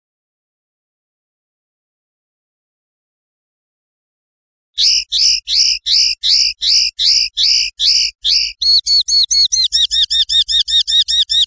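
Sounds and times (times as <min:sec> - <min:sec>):
European goldfinch song: 0:04.8 - 0:11.4.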